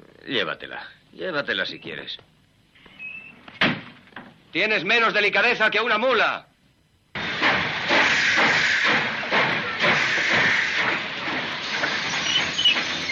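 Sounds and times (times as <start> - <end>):
speech: 0.2 - 2.3, 4.5 - 6.5
steam train hissing: 7.2 - 13.0.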